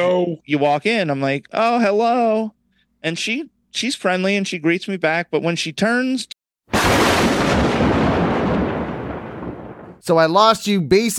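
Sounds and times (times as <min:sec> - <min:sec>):
speech: 0:00.1 - 0:07.2, 0:10.0 - 0:11.1
loud thunder boom: 0:06.7 - 0:10.0.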